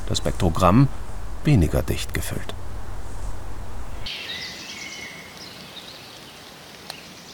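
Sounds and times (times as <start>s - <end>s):
brief low rumble: 0.0s - 4.1s
soft steady hush of a beech forest: 0.0s - 4.1s
sparse faint birdsong in a managed beech forest: 0.0s - 7.3s
speech: 0.1s - 2.6s.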